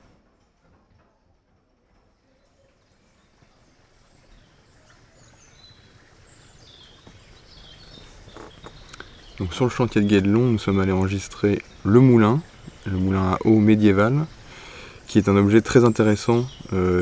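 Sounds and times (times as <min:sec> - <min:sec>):
birds chirping faintly in the open air: 0:03.0 - 0:17.0
hollow horse hoof clops on a bridge: 0:05.3 - 0:17.0
speech: 0:09.4 - 0:14.4, 0:15.1 - 0:17.0.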